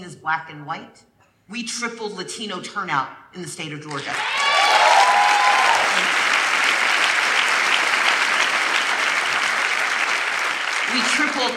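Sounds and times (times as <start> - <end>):
speech: 0.0 - 4.7, 10.9 - 11.5
sustained applause from a large audience: 4.0 - 11.5.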